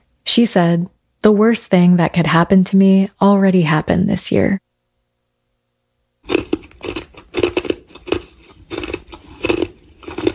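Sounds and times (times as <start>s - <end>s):
speech: 0.3s - 4.6s
ice being chewed with loud crunching: 6.2s - 10.3s.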